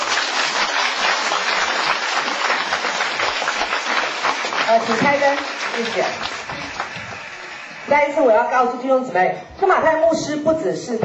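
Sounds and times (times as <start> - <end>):
congregation applauding during a church service: 0.0 - 8.2
speech: 4.7 - 6.6, 7.9 - 11.0.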